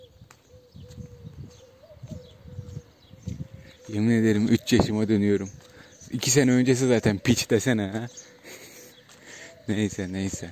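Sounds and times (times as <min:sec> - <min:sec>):
birds chirping and twittering outdoors in the morning: 0:00.0 - 0:10.5
speech: 0:03.9 - 0:08.3, 0:09.7 - 0:10.5.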